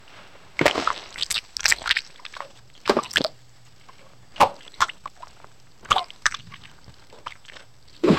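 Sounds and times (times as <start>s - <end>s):
cartoonish eating sounds of fries: 0.6s - 3.4s, 4.4s - 8.0s.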